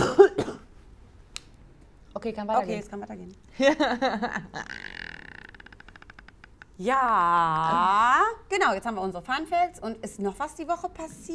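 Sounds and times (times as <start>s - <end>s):
single short throaty cough: 0.0s - 0.7s
speech: 2.2s - 4.9s, 6.8s - 11.3s
laughter: 3.6s - 4.8s.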